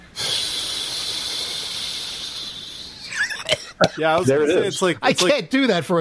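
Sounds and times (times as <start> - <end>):
person vocally imitating steam hissing: 0.0 - 3.2
speech: 4.0 - 5.9.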